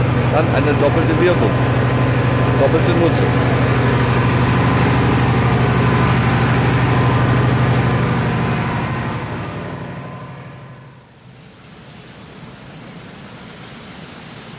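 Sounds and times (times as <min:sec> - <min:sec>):
biogas-fuelled combustion engine driving a generator at a sewage plant: 0:00.0 - 0:11.4
speech: 0:00.4 - 0:01.8, 0:02.6 - 0:03.8.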